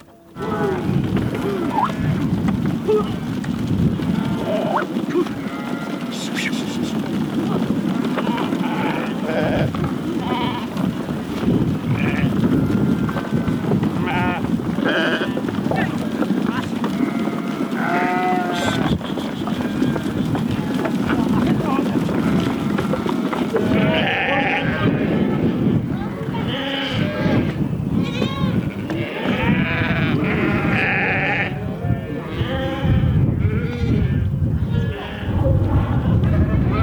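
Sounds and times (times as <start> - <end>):
wind buffeting the microphone: 0.0 - 36.8
faint voices: 0.1 - 36.8
steady outdoor rumble: 0.4 - 36.8
flock of sheep bleating: 4.0 - 7.0, 8.0 - 10.8, 11.9 - 15.4, 16.8 - 20.8, 22.0 - 25.5, 26.4 - 34.2.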